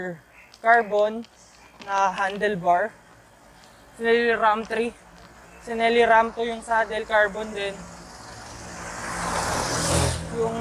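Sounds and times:
speech: 0:00.0 - 0:03.0, 0:04.0 - 0:05.0, 0:05.6 - 0:07.9
broad road noise: 0:00.0 - 0:10.5
truck engine rumbling past on the road: 0:06.2 - 0:10.5.

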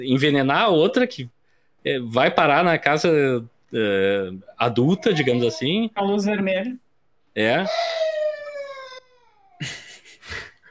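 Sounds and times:
speech: 0:00.0 - 0:06.8, 0:07.4 - 0:08.1, 0:09.6 - 0:10.4
dog howling in a bedroom: 0:07.7 - 0:09.6.

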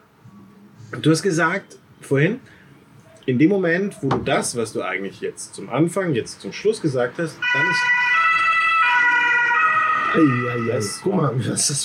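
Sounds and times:
faint rumble of road traffic: 0:00.0 - 0:11.8
speech: 0:00.9 - 0:02.6, 0:03.2 - 0:08.0, 0:10.1 - 0:11.8
two-tone ambulance siren wailing: 0:07.4 - 0:11.8.

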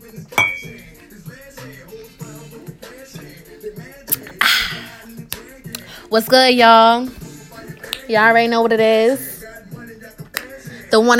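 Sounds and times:
music: 0:00.0 - 0:11.1
glasses clinking in a toast: 0:00.3 - 0:00.9
speech: 0:06.1 - 0:07.2, 0:08.1 - 0:09.3, 0:11.0 - 0:11.1.

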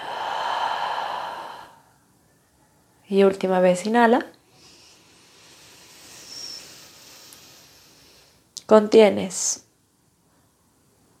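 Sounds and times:
slow exhale through the mouth: 0:00.0 - 0:01.9, 0:04.5 - 0:08.4
speech: 0:03.1 - 0:04.4, 0:08.7 - 0:09.7.

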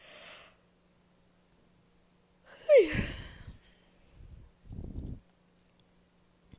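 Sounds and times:
person yawning: 0:02.5 - 0:03.6.

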